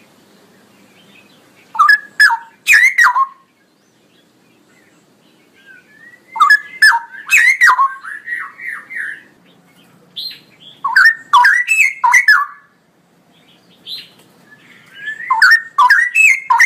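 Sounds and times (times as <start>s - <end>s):
male straw-headed bulbul singing loudly with bubbling whistles: 1.8s - 3.4s, 5.9s - 8.6s, 10.9s - 12.7s, 15.0s - 16.6s.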